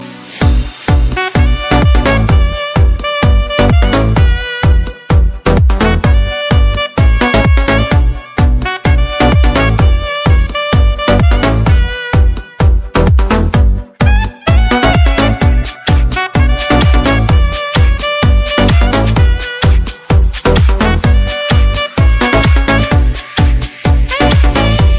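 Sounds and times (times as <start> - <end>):
solo saxophone dance music: 0.5 - 13.3, 14.0 - 24.9.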